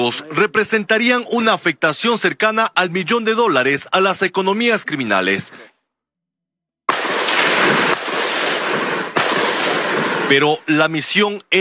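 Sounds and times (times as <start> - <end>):
speech: 0.0 - 5.7, 10.3 - 11.5
military gunshots with roaring echo: 6.9 - 10.6.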